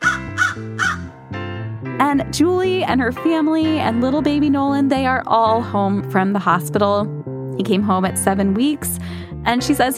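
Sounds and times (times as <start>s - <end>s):
baby boy imitating a crow's caw: 0.0s - 1.1s
speech: 2.1s - 9.9s.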